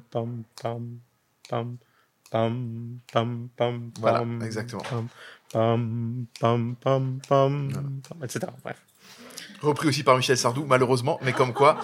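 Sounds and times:
person chanting pam syllables in dactylic rhythm: 0.0 - 8.7
speech: 0.1 - 11.8
laughter: 11.1 - 11.8.

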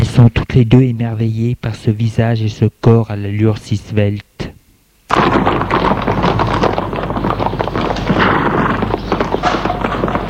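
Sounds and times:
speech: 0.2 - 4.3
hoofbeats of a horse galloping away: 5.1 - 10.2.

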